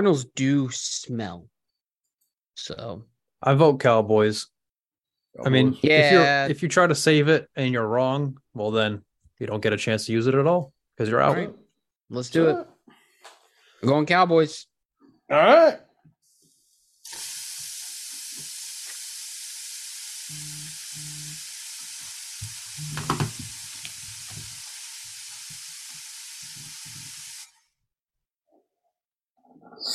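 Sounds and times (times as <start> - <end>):
speech: 0.0 - 1.5, 2.6 - 4.5, 5.4 - 12.7, 13.8 - 14.7, 15.3 - 15.8
burgers sizzling on a hot grill: 16.4 - 27.6.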